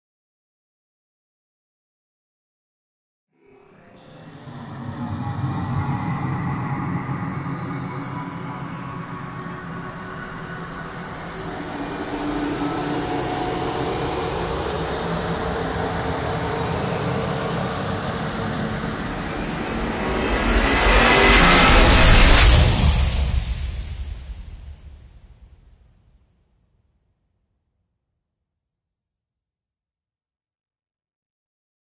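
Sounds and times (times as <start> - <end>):
riser sound effects: 3.7 - 24.7.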